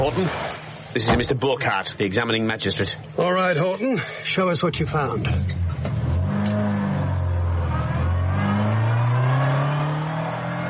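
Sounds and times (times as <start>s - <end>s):
speech: 0.0s - 5.6s
car engine revving as it accelerates away: 5.3s - 10.6s.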